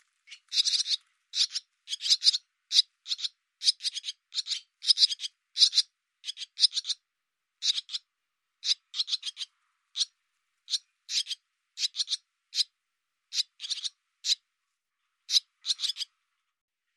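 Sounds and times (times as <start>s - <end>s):
barn swallow uttering short harsh clicking calls: 0.3s - 7.0s, 7.6s - 8.0s, 8.6s - 10.1s, 10.7s - 12.7s, 13.3s - 14.4s, 15.3s - 16.1s.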